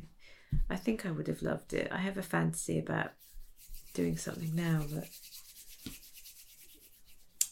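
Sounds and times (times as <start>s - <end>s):
speech: 0.7s - 3.3s, 4.0s - 6.0s
tool rubbing filler into gaps on sculpture feet: 3.1s - 7.4s.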